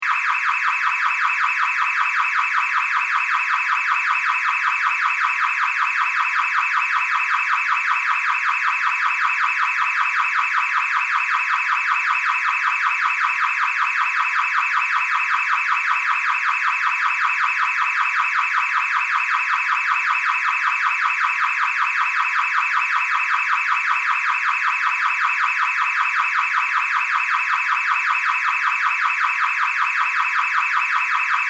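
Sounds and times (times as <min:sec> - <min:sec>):
car alarm beeps: 0:00.0 - 0:31.4.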